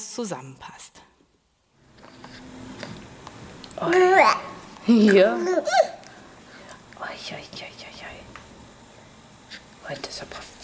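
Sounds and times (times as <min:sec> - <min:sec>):
speech: 0:00.2 - 0:01.0, 0:03.8 - 0:06.0, 0:07.1 - 0:07.9, 0:09.9 - 0:10.6
stressed tired baby fussing and babbling: 0:03.8 - 0:04.6.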